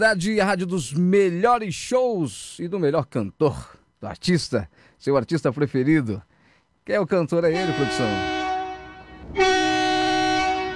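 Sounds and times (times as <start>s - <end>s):
speech: 0.0s - 6.3s, 6.9s - 8.4s, 9.3s - 9.5s
train horn blast: 7.5s - 10.7s.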